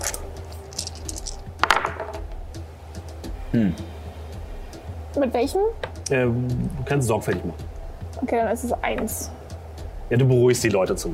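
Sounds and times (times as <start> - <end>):
plastic dice clattering across a hard surface: 0.0 - 2.2
speech: 3.5 - 3.9, 5.2 - 9.4, 10.1 - 11.1.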